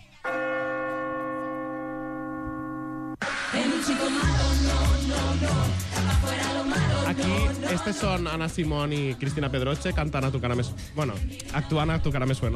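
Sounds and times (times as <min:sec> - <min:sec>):
bell chime for a New Year's Eve midnight countdown: 0:00.2 - 0:03.2
burst of mixed noise and deep low tones: 0:03.2 - 0:07.8
speech: 0:03.5 - 0:12.5.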